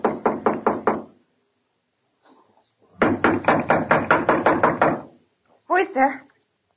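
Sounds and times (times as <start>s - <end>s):
knocking on a hotel room door: 0.0s - 1.2s, 3.0s - 5.2s.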